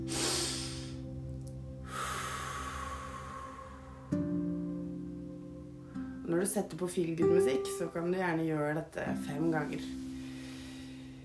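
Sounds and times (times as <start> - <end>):
deep breath in through nose and out through mouth: 0.0 - 1.2, 1.8 - 4.5, 10.0 - 11.2
speech: 6.3 - 10.0.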